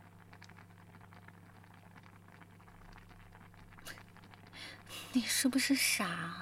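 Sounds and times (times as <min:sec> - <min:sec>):
low appliance hum: 0:00.0 - 0:06.3
water boiling in a pot: 0:00.0 - 0:06.3
speech: 0:05.2 - 0:06.3.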